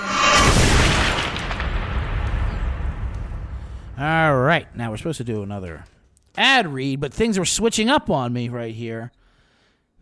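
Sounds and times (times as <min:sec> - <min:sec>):
bomb explosion sound effect: 0:00.0 - 0:04.8
speech: 0:04.0 - 0:09.2.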